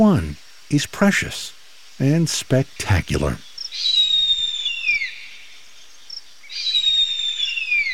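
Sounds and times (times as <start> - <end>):
speech: 0.0 - 4.0
eagle whistled calls: 3.4 - 5.5, 6.4 - 7.9.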